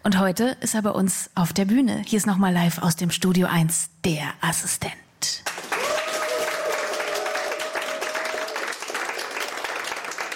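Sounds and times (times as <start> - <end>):
speech: 0.0 - 5.7
studio audience applauding: 5.4 - 10.3.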